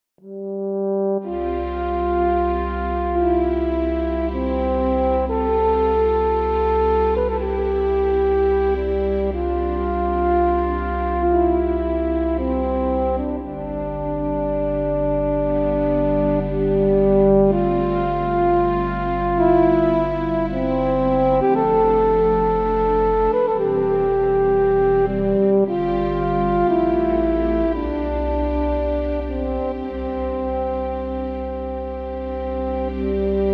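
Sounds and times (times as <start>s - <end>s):
French horn on a digital instrument: 0.2s - 33.5s.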